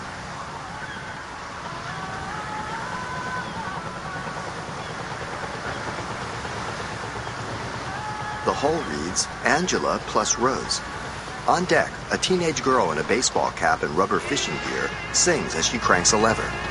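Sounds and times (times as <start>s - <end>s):
sea waves washing around a rusty fishing trawler at sea: 0.0s - 16.6s
speech: 8.5s - 16.6s
faint honking bird-like calls: 14.0s - 16.6s.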